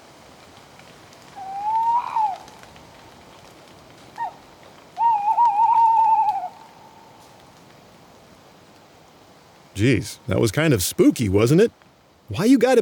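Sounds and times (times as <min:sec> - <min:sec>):
steady rain on a stormy night in France: 0:00.0 - 0:12.7
tawny owl Strix aluco hooting on a stormy night in France: 0:01.4 - 0:02.6, 0:04.2 - 0:04.4, 0:05.0 - 0:07.2
speech: 0:09.8 - 0:12.7.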